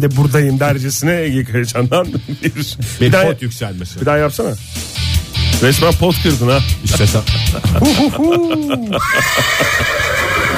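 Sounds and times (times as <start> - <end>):
speech: 0.0 - 10.5
laughter: 2.0 - 3.1, 6.9 - 10.5
person imitating a horse's whinny: 8.3 - 10.5.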